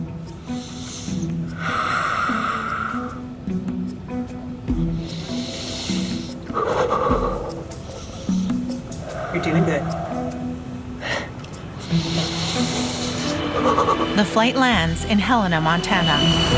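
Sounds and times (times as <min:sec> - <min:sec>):
deep slow breathing by a nervous flyer trying to stay calm: 0:00.4 - 0:03.3, 0:04.9 - 0:14.2
speech: 0:09.4 - 0:10.0, 0:13.8 - 0:16.5.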